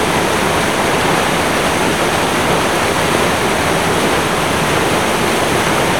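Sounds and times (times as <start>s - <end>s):
wild river water: 0.0s - 5.9s.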